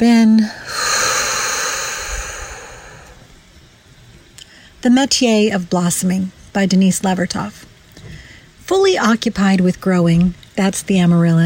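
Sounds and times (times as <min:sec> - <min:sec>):
speech: 0:00.0 - 0:00.8, 0:04.8 - 0:07.7, 0:08.7 - 0:11.4
big breath taken in and out: 0:00.4 - 0:03.4.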